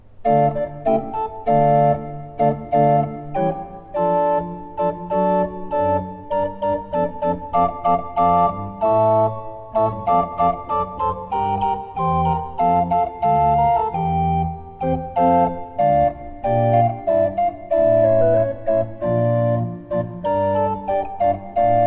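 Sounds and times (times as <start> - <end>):
pipe organ playing: 0.2 - 21.8.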